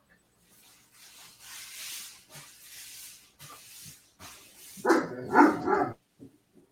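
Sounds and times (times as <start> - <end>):
big male Great Dane and Labrador mix dog barking: 4.9 - 6.0.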